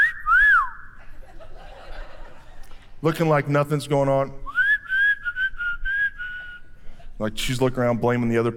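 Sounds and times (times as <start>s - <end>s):
person whistling through a dental retainer: 0.0s - 1.0s, 4.4s - 6.9s
laughter: 1.0s - 3.0s
speech: 3.0s - 4.4s, 7.2s - 8.5s.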